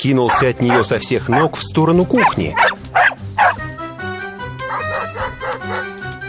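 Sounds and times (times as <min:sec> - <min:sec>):
speech: 0:00.0 - 0:02.8
dog barking, yipping and whining excitedly: 0:00.3 - 0:03.6, 0:04.7 - 0:05.9.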